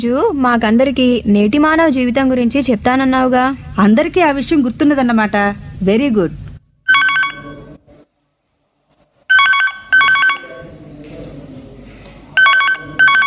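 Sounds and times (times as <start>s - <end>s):
speech: 0.0s - 6.4s
telephone ringing with warbling electronic bell tones: 6.9s - 7.8s, 9.3s - 10.7s, 12.4s - 13.2s.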